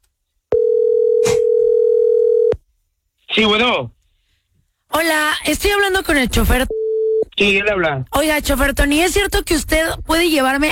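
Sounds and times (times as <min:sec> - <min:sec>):
telephone dial tone: 0:00.5 - 0:02.6
speech: 0:03.4 - 0:04.0, 0:04.9 - 0:06.7, 0:07.4 - 0:10.7.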